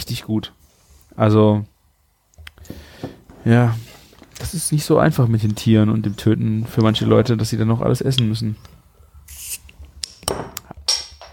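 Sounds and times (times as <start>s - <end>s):
speech: 0.1s - 1.7s, 3.4s - 8.7s
bottle of beer opened with a sharp hiss: 9.3s - 9.7s.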